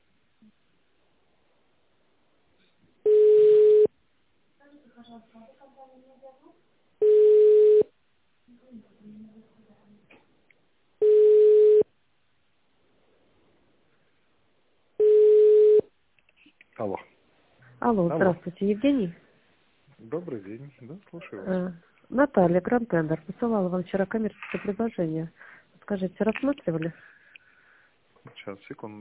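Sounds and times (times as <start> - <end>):
telephone on-hold tone beeps: 3.1 - 3.9, 7.0 - 7.9, 11.0 - 11.9
speech: 17.9 - 19.2, 20.1 - 27.1, 28.2 - 28.9.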